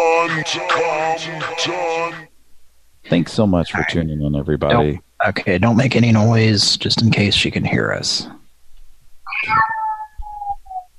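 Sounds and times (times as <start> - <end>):
speech: 0.3 - 2.3, 3.0 - 8.4, 9.4 - 9.7
cat meowing: 3.7 - 3.9, 9.3 - 10.8.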